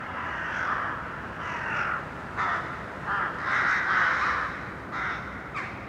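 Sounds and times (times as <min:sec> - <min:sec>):
crows cawing in an urban setting: 0:00.1 - 0:05.8.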